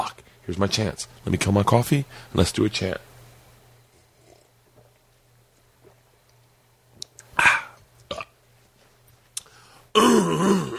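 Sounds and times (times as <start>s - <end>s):
speech: 0.5s - 3.1s
person clearing throat: 7.4s - 8.4s, 9.9s - 10.7s.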